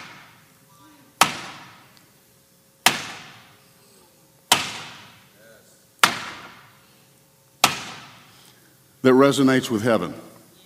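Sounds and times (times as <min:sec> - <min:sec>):
hammer striking a nail: 0:01.2 - 0:01.9, 0:02.8 - 0:03.5, 0:04.5 - 0:05.2, 0:06.0 - 0:06.7, 0:07.6 - 0:08.2
speech: 0:09.0 - 0:10.3.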